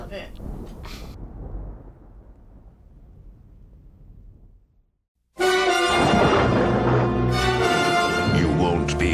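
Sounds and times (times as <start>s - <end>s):
deep rolling thunder: 0.0s - 5.0s, 5.7s - 9.0s.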